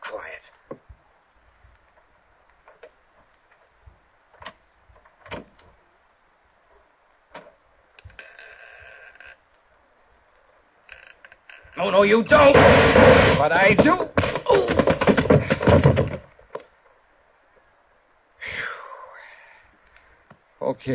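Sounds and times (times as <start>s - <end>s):
speech: 11.8s - 14.2s
bedroom door being kicked open: 12.3s - 16.3s.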